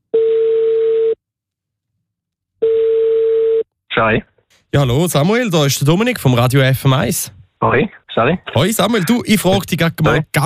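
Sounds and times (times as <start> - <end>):
telephone ringing tone on the caller's end of a radio station call: 0.1 - 1.2, 2.6 - 3.6
speech: 4.0 - 10.4.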